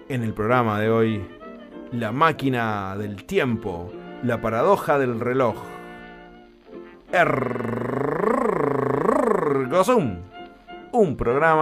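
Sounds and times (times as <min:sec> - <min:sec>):
speech: 0:00.1 - 0:05.7, 0:07.1 - 0:07.8, 0:09.6 - 0:10.3, 0:10.9 - 0:11.5
show host imitating a cat's purr: 0:07.2 - 0:09.7.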